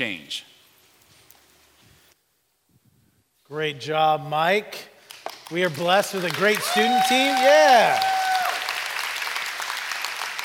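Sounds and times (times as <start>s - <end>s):
speech: 0.0s - 0.5s, 3.5s - 4.9s, 5.5s - 8.1s
audience clapping and cheering at a church service: 5.1s - 10.4s.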